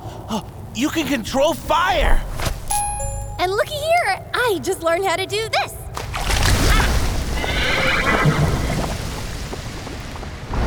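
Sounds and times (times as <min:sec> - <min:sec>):
speech: 0:00.3 - 0:02.3, 0:03.4 - 0:05.7
loud steady rushing and rumbling wash: 0:06.4 - 0:10.6
horses neighing: 0:06.6 - 0:09.2.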